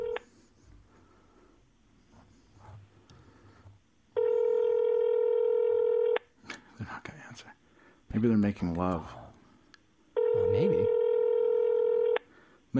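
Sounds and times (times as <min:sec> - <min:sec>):
loud steady telephone tone: 0:00.0 - 0:00.3, 0:04.2 - 0:06.2, 0:10.2 - 0:12.2
speech: 0:08.2 - 0:09.2.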